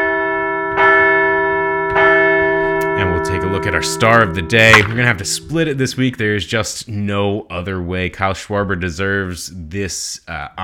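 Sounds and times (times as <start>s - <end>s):
large bell ringing: 0.0s - 6.8s
speech: 3.2s - 10.6s.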